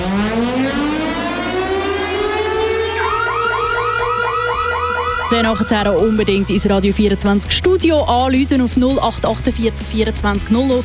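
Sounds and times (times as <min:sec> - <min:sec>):
radio station festival ticket giveaway alarm siren: 0:00.0 - 0:06.7
speech: 0:05.3 - 0:10.8.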